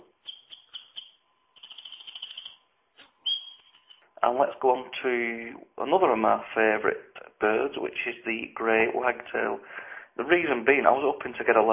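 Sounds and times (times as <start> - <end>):
faint steady hum: 0.0 - 11.7
wren singing fast high tinkling trills: 0.1 - 4.1
speech: 4.2 - 11.7.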